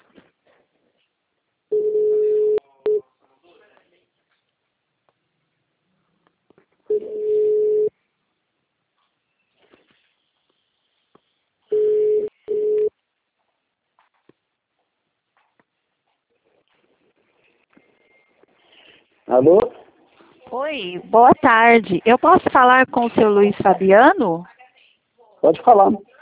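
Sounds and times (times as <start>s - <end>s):
ringback tone on an outgoing phone call: 1.7s - 3.0s, 6.9s - 7.9s, 11.7s - 12.9s
speech: 19.3s - 19.7s, 20.6s - 24.5s, 25.4s - 26.1s.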